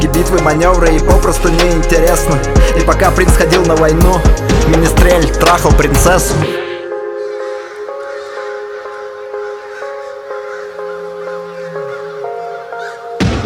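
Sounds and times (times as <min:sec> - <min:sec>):
speech: 0:00.0 - 0:06.7
flock of crows cawing: 0:06.8 - 0:13.3.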